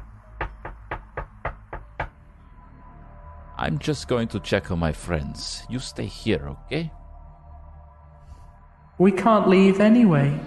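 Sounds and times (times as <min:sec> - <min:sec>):
dull knocks on wood: 0:00.4 - 0:02.2
speech: 0:03.6 - 0:07.0, 0:09.0 - 0:10.4.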